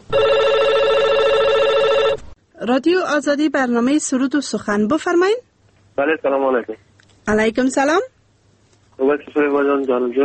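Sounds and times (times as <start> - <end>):
telephone ringing with electronic trill for incoming radio phone-in call: 0.0 - 2.4
speech: 2.6 - 8.1, 9.0 - 10.2.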